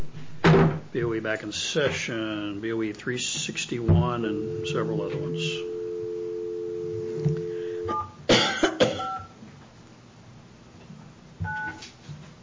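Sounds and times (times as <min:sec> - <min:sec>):
speech: 0:01.0 - 0:05.8
steady telephone dial tone: 0:04.3 - 0:08.0
person coughing: 0:08.3 - 0:09.2.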